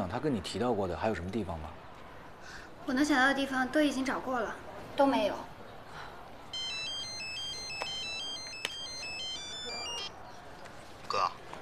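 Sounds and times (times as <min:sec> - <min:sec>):
speech: 0:00.1 - 0:05.5
mobile phone ringtone with bright electronic melody: 0:06.5 - 0:10.2.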